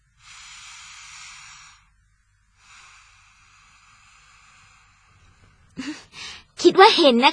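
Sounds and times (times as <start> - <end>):
long slow airy inhaling breath: 0.1 - 6.6
short breath: 0.2 - 1.9, 2.5 - 6.6
speech: 6.6 - 7.3.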